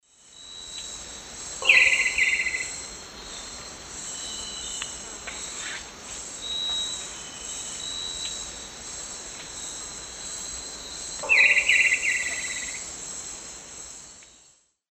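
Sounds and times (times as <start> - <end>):
Neoctantes niger alarm call in the Eastern Lowlands of South America: 1.6 - 2.8, 11.2 - 12.8.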